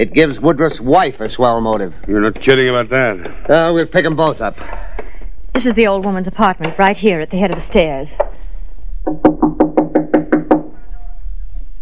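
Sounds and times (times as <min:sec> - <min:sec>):
speech: 0:00.0 - 0:05.0, 0:05.6 - 0:08.4, 0:09.0 - 0:09.7
firm knocks on a wooden apartment door at the head of the stairs: 0:09.0 - 0:10.8.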